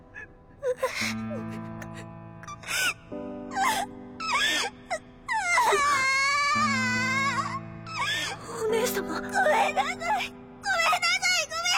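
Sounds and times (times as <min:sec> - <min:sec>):
girl crying: 0:00.6 - 0:11.7.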